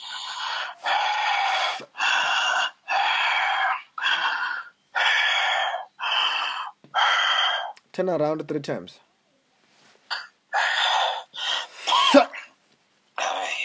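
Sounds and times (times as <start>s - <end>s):
heavy forceful breathing during a deliverance prayer session: 0.0s - 7.8s, 10.1s - 12.6s
speech: 8.0s - 9.1s.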